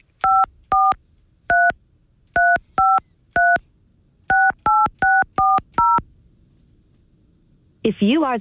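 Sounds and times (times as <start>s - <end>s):
telephone keypad tones entering a meeting ID: 0.0s - 1.8s, 2.4s - 3.6s, 4.3s - 6.0s.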